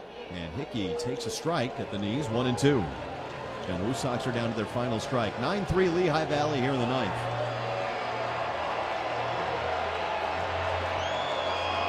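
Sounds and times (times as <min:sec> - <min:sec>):
large baseball stadium crowd cheering: 0:00.0 - 0:11.8
speech: 0:00.3 - 0:03.1, 0:03.7 - 0:07.4
scattered whoops and shouts from baseball crowd: 0:09.3 - 0:11.8.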